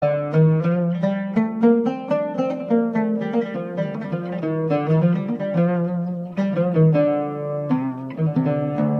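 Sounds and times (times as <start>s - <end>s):
oud playing in maqam bayati on D: 0.0s - 8.9s.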